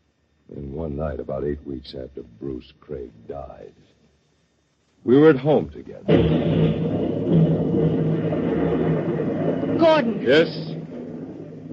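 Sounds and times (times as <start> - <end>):
speech: 0.8 - 4.0, 5.0 - 8.4, 9.8 - 10.7
storm thunder rumbling: 6.0 - 11.7.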